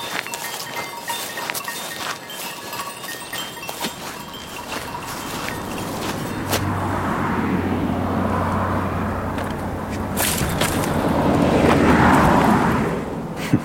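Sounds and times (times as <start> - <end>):
car engine and tire noise passing on a road: 2.8 - 13.6
steady low hum: 3.4 - 13.6.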